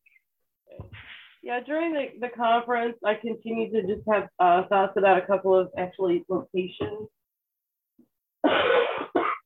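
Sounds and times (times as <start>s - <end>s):
speech: 1.5s - 7.2s
harsh coughs: 8.4s - 9.4s.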